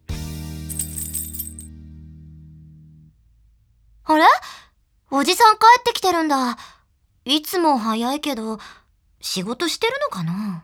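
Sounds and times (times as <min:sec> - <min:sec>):
bunch of keys jingling: 0:00.7 - 0:01.7
speech: 0:04.1 - 0:10.6.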